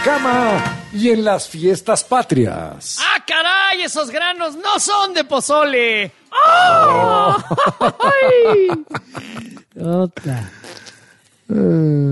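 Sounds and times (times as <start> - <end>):
speech: 0.0 - 10.8, 11.5 - 12.1
person attempting a mariachi grito: 6.4 - 7.4
laughter: 6.8 - 9.7.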